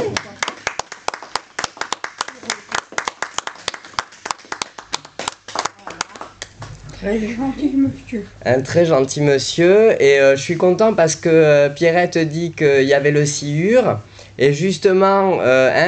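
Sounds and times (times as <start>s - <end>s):
small audience clapping: 0.0s - 6.8s
speech: 7.0s - 15.8s.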